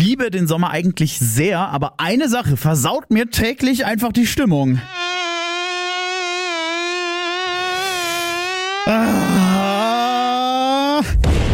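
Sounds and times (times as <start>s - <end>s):
speech: 0.1s - 5.0s, 8.9s - 9.2s
mosquito buzzing: 4.8s - 10.8s.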